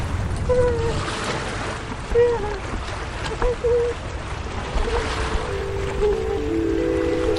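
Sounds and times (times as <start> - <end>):
sea waves washing along the shore below a stone wall: 0.0 - 7.3.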